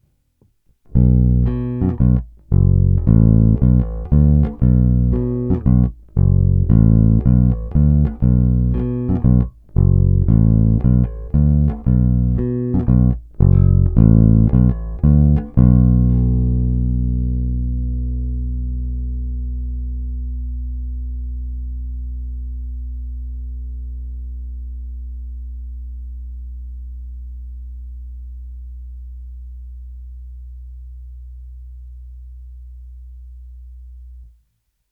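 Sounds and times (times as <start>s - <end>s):
Lakland 44-64 bass guitar played over the neck pickup: 0.9s - 34.3s.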